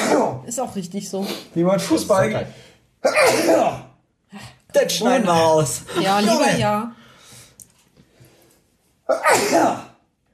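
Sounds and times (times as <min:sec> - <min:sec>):
person sneezing: 0:00.0 - 0:00.4, 0:03.0 - 0:04.0, 0:09.1 - 0:10.0
speech: 0:00.1 - 0:07.0, 0:09.1 - 0:09.8.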